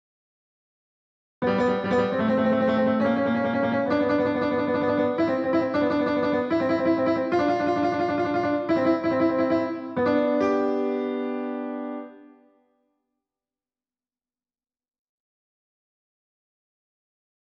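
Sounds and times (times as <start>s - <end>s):
Korg Triton keyboard synthesizer playing: 1.4s - 12.2s.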